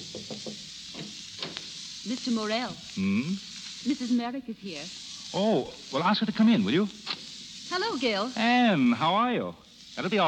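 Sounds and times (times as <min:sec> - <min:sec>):
knocking on a publisher's office door in a New York City skyscraper: 0:00.0 - 0:01.1
steady hiss: 0:00.0 - 0:10.2
speech: 0:02.1 - 0:07.1, 0:07.7 - 0:10.2.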